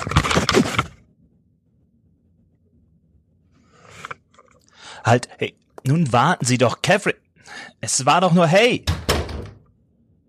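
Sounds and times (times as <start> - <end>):
speech: 5.1 - 9.1
hotel room door slamming shut: 8.8 - 9.6.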